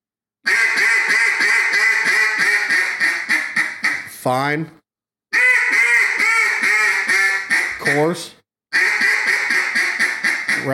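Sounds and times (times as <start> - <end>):
handmade duck call blown to imitate a duck: 0.4 - 4.1, 5.3 - 8.1, 8.7 - 10.7
speech: 4.2 - 4.8, 7.8 - 8.4.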